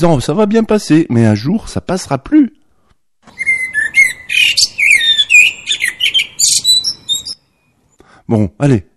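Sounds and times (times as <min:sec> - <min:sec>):
speech: 0:00.0 - 0:02.6, 0:04.3 - 0:04.8, 0:08.3 - 0:08.9
blackbird singing fluty whistles and twittering phrases: 0:03.3 - 0:07.8.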